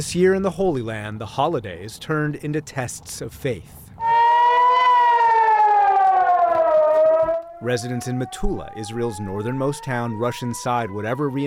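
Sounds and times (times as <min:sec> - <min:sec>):
speech: 0:00.0 - 0:03.8, 0:07.6 - 0:11.4
air raid siren in Metula Israel warning of incoming rockets: 0:04.0 - 0:11.4.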